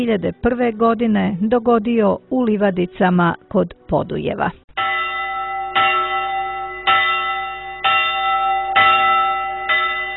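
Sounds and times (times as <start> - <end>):
speech: 0.0 - 4.6
church bells ringing: 4.8 - 10.1.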